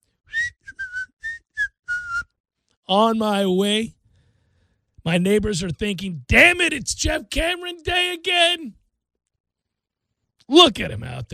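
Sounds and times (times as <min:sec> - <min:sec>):
person whistling a tune while walking down a driveway: 0:00.3 - 0:02.4
speech: 0:02.9 - 0:04.0, 0:05.0 - 0:08.8, 0:10.5 - 0:11.3.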